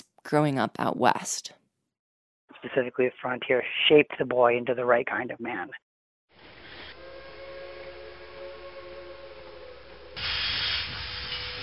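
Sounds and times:
speech: 0:00.3 - 0:01.6, 0:02.6 - 0:05.8
steam train steam hissing: 0:06.4 - 0:08.5, 0:09.9 - 0:11.6
steam train whistle: 0:06.4 - 0:11.6.

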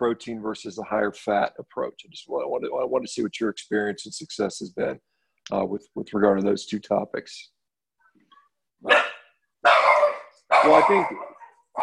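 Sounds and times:
speech: 0:00.0 - 0:07.6, 0:10.6 - 0:11.3
puppy yapping: 0:08.8 - 0:11.8.

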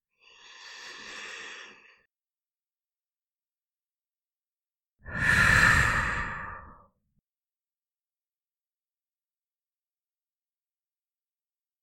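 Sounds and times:
slow deep breaths: 0:00.2 - 0:02.1, 0:05.0 - 0:06.9.

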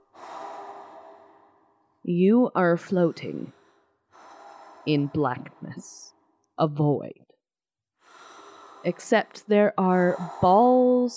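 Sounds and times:
soft airy breathy exhalation: 0:00.0 - 0:02.0, 0:02.9 - 0:06.4, 0:08.0 - 0:11.0
speech: 0:02.0 - 0:03.6, 0:04.8 - 0:07.3, 0:08.8 - 0:11.1.

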